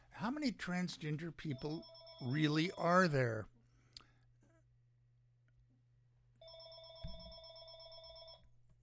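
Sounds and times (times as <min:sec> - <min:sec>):
low hum: 0:00.0 - 0:08.8
speech: 0:00.2 - 0:03.5
telephone ringing with an incoming call: 0:01.5 - 0:02.8, 0:06.4 - 0:08.5.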